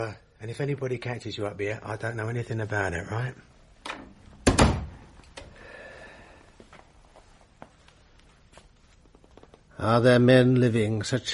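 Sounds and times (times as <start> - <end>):
speech: 0.0 - 4.1, 9.8 - 11.3
theatre dressing room door creaking: 3.8 - 5.5
theatre dressing room door opened with a thump and rattle: 4.4 - 5.0.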